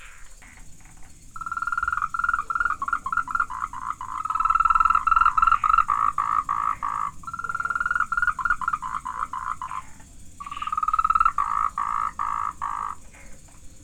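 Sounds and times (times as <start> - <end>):
frog calling in pulsed bursts: 0.4 - 13.5.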